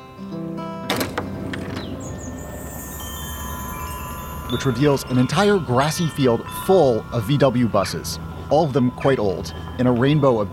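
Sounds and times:
door opening to the outside: 0.8 - 2.8
steady wind-like noise: 1.3 - 10.5
speech: 4.5 - 10.5.

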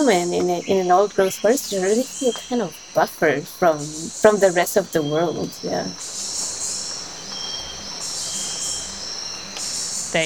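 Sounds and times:
speech: 0.0 - 6.4
cricket-like trilling in old-growth rainforest: 0.0 - 10.2
dense shrill insect chorus in old-growth rainforest: 0.0 - 10.2
faint chirps in old-growth rainforest: 0.0 - 10.2.

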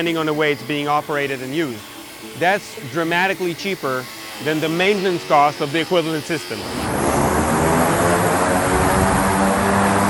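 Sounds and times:
speech: 0.0 - 7.2
electric propeller aircraft engine drone: 6.6 - 10.0.

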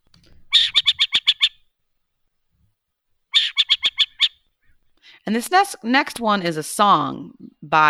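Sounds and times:
Western burrowing owl chattering call: 0.2 - 1.6, 3.3 - 4.4
speech: 5.3 - 7.8.

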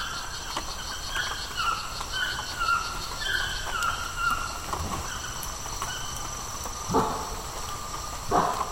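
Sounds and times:
bark-like howler monkey calls in La Selva Rainforest Costa Rica: 0.0 - 7.6
buzzing insects in La Selva Rainforest Costa Rica: 0.0 - 8.6
chirping birds in La Selva Rainforest Costa Rica: 0.0 - 8.6.

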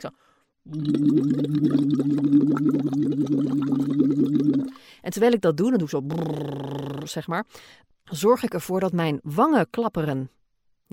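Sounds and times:
speech: 0.0 - 3.5, 5.0 - 10.9
blowing bubbles through a straw into water in a small bottle: 0.6 - 4.9, 6.0 - 7.2.

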